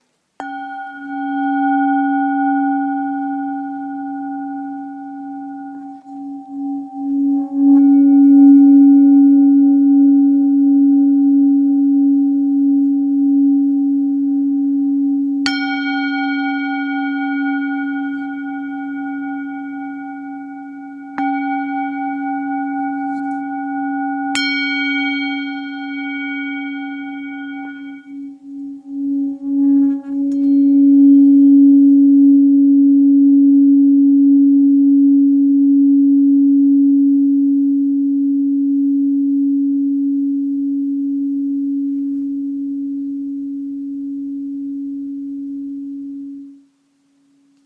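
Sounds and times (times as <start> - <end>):
Tibetan singing bowl of 800-900 g tuned to C sharp: 0.4 - 46.8.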